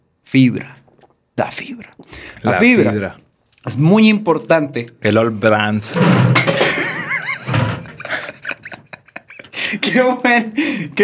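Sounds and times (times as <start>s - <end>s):
speech: 0.3s - 0.8s, 1.4s - 6.4s, 9.7s - 11.0s
empty energy drink can dropping and hitting the floor: 6.0s - 6.8s, 7.4s - 8.0s
laughter: 6.6s - 10.5s.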